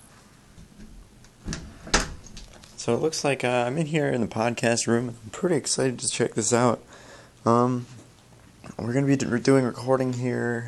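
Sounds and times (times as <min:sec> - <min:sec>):
quiet room hum: 0:00.0 - 0:10.6
old wooden door creaking open: 0:00.8 - 0:02.6
speech: 0:02.8 - 0:08.0, 0:08.8 - 0:10.6.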